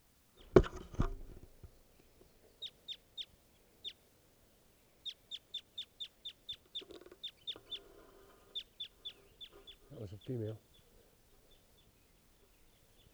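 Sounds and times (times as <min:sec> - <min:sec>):
knocks and rustles: 0:00.4 - 0:01.7
wild bird clucking: 0:05.0 - 0:10.4
speech: 0:10.1 - 0:10.7.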